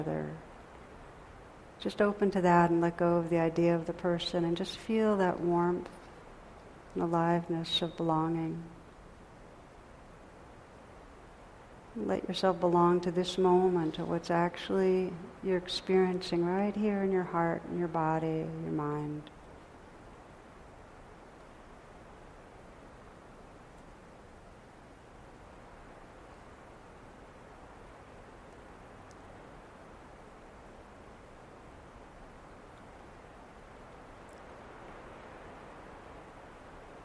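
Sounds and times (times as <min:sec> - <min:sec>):
steady rain falling with a faint patter: 0:00.0 - 0:37.0
speech: 0:01.8 - 0:06.0, 0:06.9 - 0:08.8, 0:12.0 - 0:19.4.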